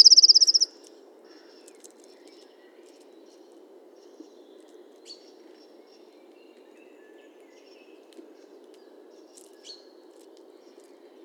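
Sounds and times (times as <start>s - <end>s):
Eurasian blue tit trill: 0.0s - 0.7s
faint low background noise: 0.0s - 11.2s.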